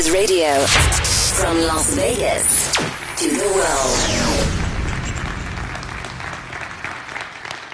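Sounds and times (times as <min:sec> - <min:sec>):
speech: 0:00.0 - 0:04.6
low rumble: 0:00.8 - 0:07.4
crowd clapping: 0:04.8 - 0:07.7.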